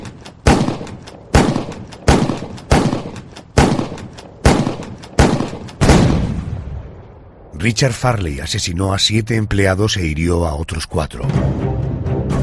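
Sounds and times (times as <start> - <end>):
gunshots with echo: 0.0 - 6.7
speech: 7.6 - 11.9.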